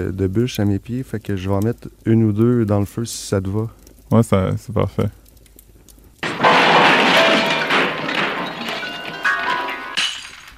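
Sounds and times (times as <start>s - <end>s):
speech: 0.0s - 5.2s
sudden crashing knock against a piano: 6.2s - 10.2s
rattling: 6.2s - 10.5s.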